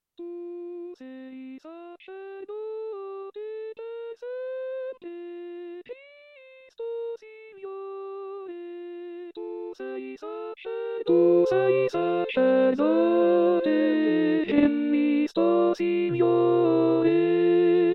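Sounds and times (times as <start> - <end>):
contralto voices singing a liturgical hymn: 9.4 - 17.9.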